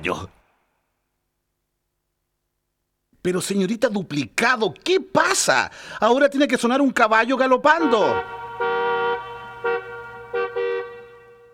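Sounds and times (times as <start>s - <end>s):
speech: 0.0s - 0.4s, 3.2s - 8.7s
car horn honking: 7.7s - 11.5s.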